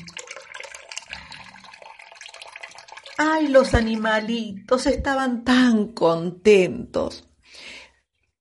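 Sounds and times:
water gushing and splashing: 0.0s - 4.4s
speech: 3.2s - 7.3s.

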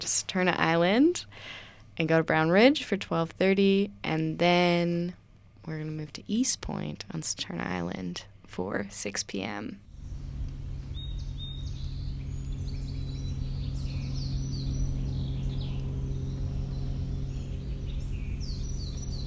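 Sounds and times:
speech: 0.1s - 9.8s
float plane engine droning overhead: 9.8s - 19.2s
song sparrow chirping and twittering: 10.8s - 19.2s.

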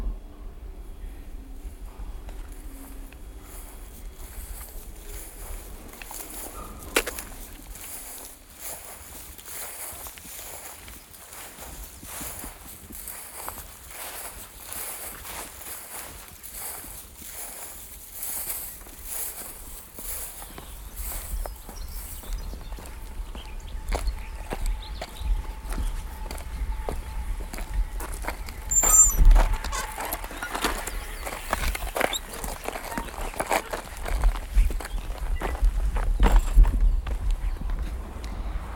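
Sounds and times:
soft wind: 0.0s - 38.7s
footsteps crunching along an outdoor path in the Oostvaardersveld: 1.7s - 38.4s.

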